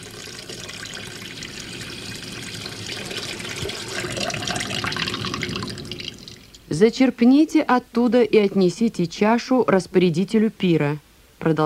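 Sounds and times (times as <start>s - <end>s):
water pouring into large vessels: 0.0s - 6.6s
speech: 6.8s - 11.6s.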